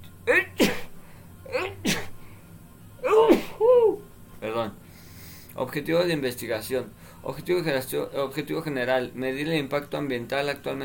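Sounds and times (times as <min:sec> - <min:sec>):
loud sneezes with gasping build-up: 0:00.3 - 0:02.2, 0:03.0 - 0:03.9
speech: 0:05.7 - 0:10.8.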